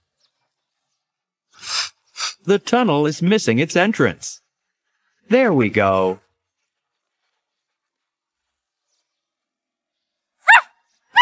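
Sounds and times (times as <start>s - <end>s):
speech: 2.4s - 4.4s, 5.3s - 6.2s
puppy barking: 10.4s - 11.2s.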